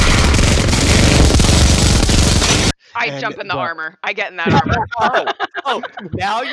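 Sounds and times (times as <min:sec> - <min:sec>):
machine gun fire: 0:00.0 - 0:02.7
laughter: 0:03.0 - 0:03.7, 0:04.5 - 0:06.5
speech: 0:03.0 - 0:06.5.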